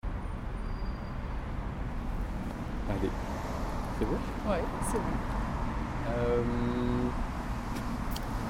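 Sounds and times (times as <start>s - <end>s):
road traffic on a road alongside a canal dike: 0.0s - 8.4s
passing vehicle's hum: 1.9s - 8.4s
speech: 2.9s - 3.4s, 4.0s - 5.4s, 6.1s - 7.3s.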